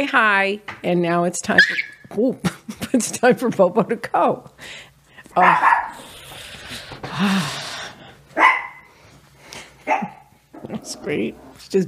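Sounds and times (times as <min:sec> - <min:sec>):
speech: 0:00.0 - 0:06.1, 0:07.0 - 0:07.6, 0:09.9 - 0:11.8
dog yipping softly: 0:01.6 - 0:02.0, 0:05.4 - 0:06.0, 0:08.4 - 0:08.9
dog barking: 0:05.4 - 0:06.0, 0:08.4 - 0:08.9, 0:09.9 - 0:10.3.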